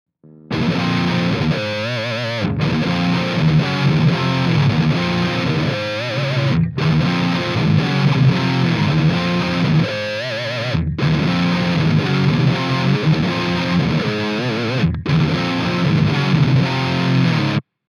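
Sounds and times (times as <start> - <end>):
Mesa Triple Rectifier guitar amplifier mega distortion: 0.2 - 17.8.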